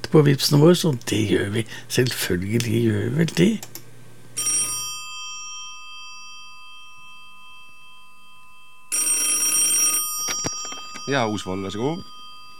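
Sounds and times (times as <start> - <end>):
speech: 0.1 - 3.7, 11.1 - 12.2
telephone bell ringing: 4.4 - 12.5.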